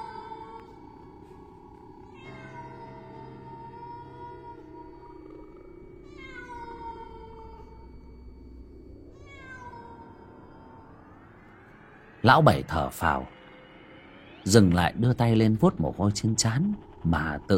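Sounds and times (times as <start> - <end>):
feral cat wailing at night: 0.0 - 0.9, 2.1 - 8.0, 9.1 - 11.8
steady low hum: 0.0 - 17.5
speech: 12.2 - 13.4, 14.4 - 17.5.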